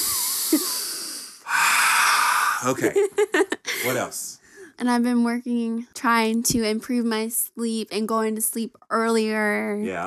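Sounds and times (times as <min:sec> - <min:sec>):
deep breathing in and out: 0:00.0 - 0:02.7
speech: 0:00.5 - 0:00.8, 0:02.6 - 0:10.0.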